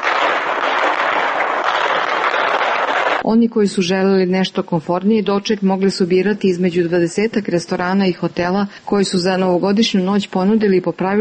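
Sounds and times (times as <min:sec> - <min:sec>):
firecrackers exploding on New Year's Eve in Subotica: 0:00.0 - 0:03.2
speech: 0:03.2 - 0:11.1.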